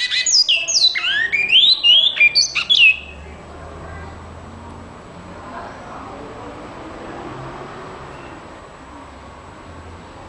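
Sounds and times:
great-billed seed finch singing: 0.0s - 3.2s.

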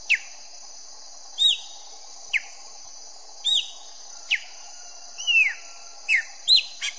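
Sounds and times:
chopi blackbird song: 1.4s - 1.8s, 3.4s - 4.4s, 5.2s - 6.9s.

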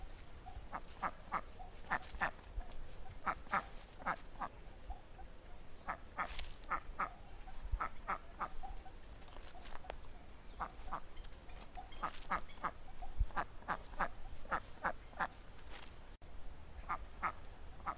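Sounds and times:
wild duck quacking: 0.7s - 2.4s, 3.2s - 4.5s, 5.8s - 8.7s, 12.0s - 15.4s, 16.8s - 17.9s.

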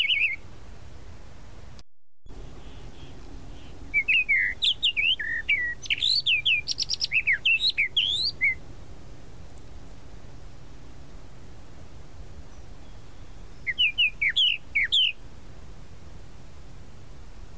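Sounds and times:
tropical mockingbird singing: 0.0s - 0.4s, 2.5s - 8.6s, 12.5s - 15.2s.

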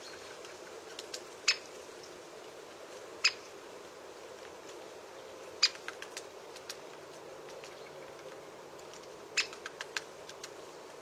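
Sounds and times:
faint steady noise: 0.0s - 10.9s
great spotted woodpecker kik calls: 1.4s - 1.8s, 3.2s - 3.5s, 5.6s - 6.8s, 9.0s - 10.5s.

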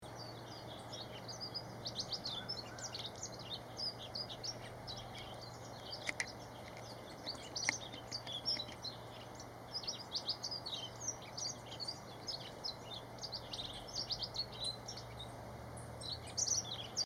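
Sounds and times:
elegant bunting singing: 0.0s - 17.0s.

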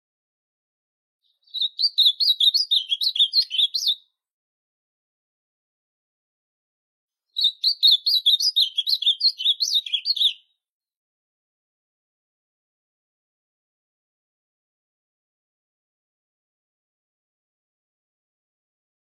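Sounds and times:
Ultramarine grosbeak singing: 1.2s - 4.0s, 7.4s - 10.5s.

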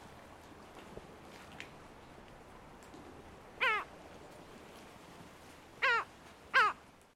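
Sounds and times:
low steady background hiss: 0.0s - 7.1s
lava gull short harsh cries: 3.6s - 3.9s, 5.8s - 6.8s.

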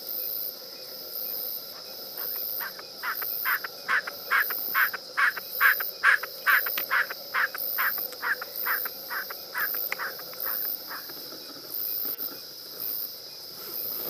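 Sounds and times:
steady insect whine: 0.0s - 14.0s
snipe short scratchy calls: 2.2s - 11.1s.

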